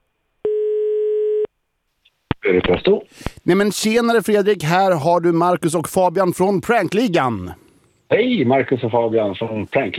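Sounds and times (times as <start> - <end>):
outgoing phone call ringing tone to a hypnotist: 0.4 - 1.5
speech: 2.5 - 9.9.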